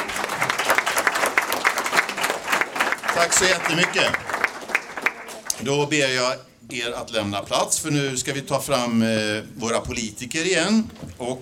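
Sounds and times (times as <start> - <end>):
room full of people applauding: 0.0 - 5.6
speech: 3.2 - 4.4, 5.6 - 11.4.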